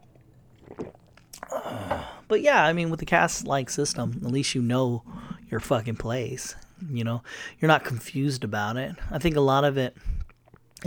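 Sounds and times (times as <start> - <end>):
person drinking water with gulps and swallowing: 0.0 - 2.3, 3.0 - 7.4, 10.0 - 10.8
speech: 2.3 - 10.1.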